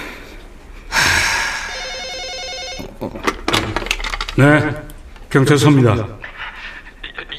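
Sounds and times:
breathy gasps: 0.9 - 1.8
telephone ringing with a rapid trilling electronic bell: 1.7 - 3.0
speech: 3.0 - 3.4, 4.4 - 6.2.

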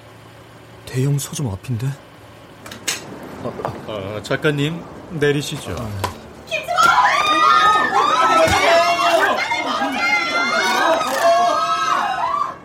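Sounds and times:
speech: 0.9 - 2.1, 3.4 - 7.0
dense crowd of fans cheering and shouting: 6.5 - 12.6.

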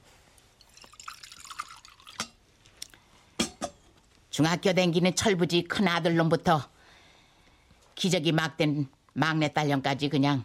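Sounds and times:
water poured from a kettle into a cup: 0.6 - 2.4
water dripping: 0.6 - 3.0
speech: 4.4 - 6.7, 8.0 - 10.4.

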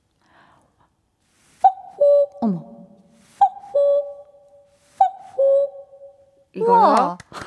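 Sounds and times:
person imitating a cuckoo call: 1.6 - 4.4, 5.0 - 6.2
speech: 2.4 - 2.7.

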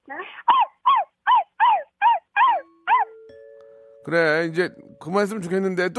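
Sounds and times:
child imitating puppy yipping barks: 0.0 - 3.1
speech: 0.1 - 0.6, 4.0 - 5.9.

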